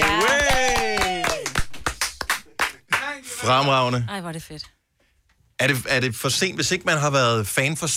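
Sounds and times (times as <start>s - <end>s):
small group clapping in applause: 0.0s - 3.4s
speech: 3.4s - 4.8s, 5.6s - 7.9s.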